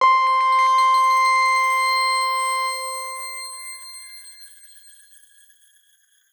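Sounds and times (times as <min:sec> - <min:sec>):
grain C5 note played fortissimo: 0:00.0 - 0:03.1.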